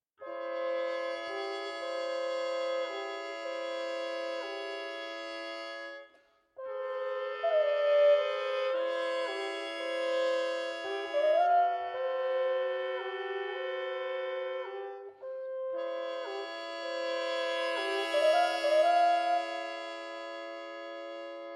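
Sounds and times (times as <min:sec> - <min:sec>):
trumpets playing largo: 0:00.2 - 0:21.5.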